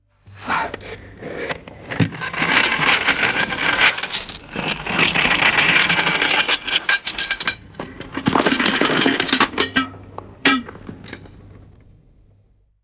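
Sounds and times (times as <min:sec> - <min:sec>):
coal chunks pouring into a metal grate: 0:01.9 - 0:11.9.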